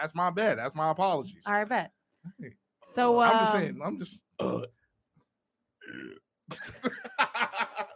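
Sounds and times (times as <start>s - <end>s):
speech: 0.0s - 4.8s, 5.9s - 7.9s
person faking a burp with their voice: 4.3s - 4.9s, 5.8s - 6.4s
laughter: 6.5s - 7.9s.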